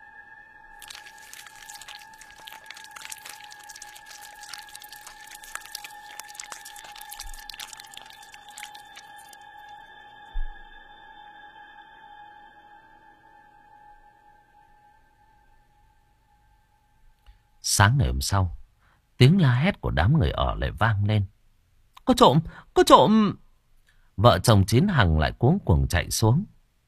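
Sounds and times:
crunchy chewing on half a cat carcass: 0:00.8 - 0:09.8
steady high-pitched hum: 0:09.4 - 0:13.7
speech: 0:17.8 - 0:18.6, 0:19.2 - 0:21.4, 0:22.1 - 0:23.4, 0:24.2 - 0:26.5.

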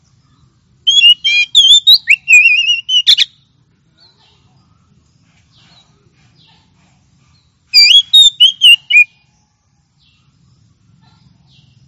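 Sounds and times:
Oriental magpie-robin singing a phrase of clear loud whistled notes: 0:00.9 - 0:03.4, 0:07.7 - 0:09.1.

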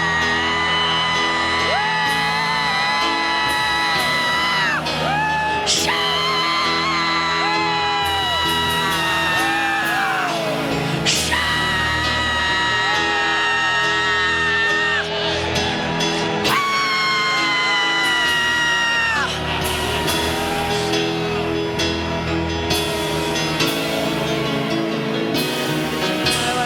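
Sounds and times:
church congregation shouting and whooping to the Lord at a conference: 0:00.0 - 0:26.5.

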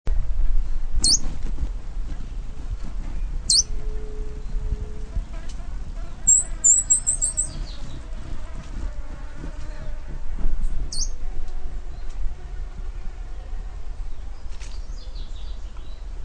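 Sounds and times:
low background rumble: 0:00.1 - 0:16.2
São Francisco sparrow Arremon franciscanus singing: 0:01.0 - 0:01.3, 0:03.2 - 0:08.8, 0:10.8 - 0:11.3, 0:14.1 - 0:16.1.

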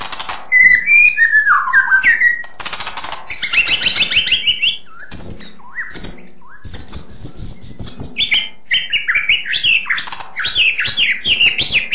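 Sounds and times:
White-rumped shama song with whistles and chattering twitters: 0:00.2 - 0:02.6, 0:03.3 - 0:11.9.

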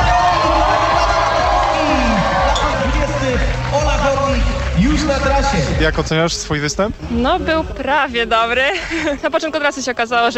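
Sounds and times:
audience cheering and shouting at an orienteering competition: 0:00.0 - 0:05.9
audience applause at an orienteering competition: 0:00.0 - 0:06.1
speech: 0:05.8 - 0:10.3.

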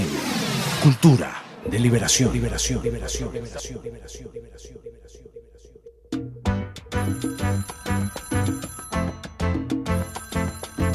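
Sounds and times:
speech: 0:00.8 - 0:05.3
rhythmic music: 0:01.7 - 0:10.9
telephone ringing: 0:06.9 - 0:10.9.

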